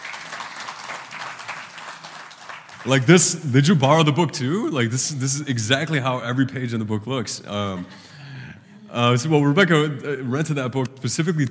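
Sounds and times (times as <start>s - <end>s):
crowd applauding: 0.0s - 3.4s
speech: 2.8s - 8.1s, 8.9s - 11.5s.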